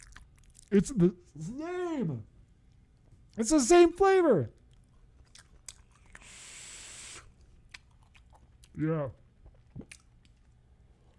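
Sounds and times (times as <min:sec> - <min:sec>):
crunchy chewing of food: 0:00.0 - 0:00.8, 0:04.6 - 0:06.4, 0:07.2 - 0:08.8, 0:09.4 - 0:11.1
speech: 0:00.7 - 0:02.3, 0:03.4 - 0:04.6, 0:08.8 - 0:09.2
brief hiss of noise: 0:06.2 - 0:07.3.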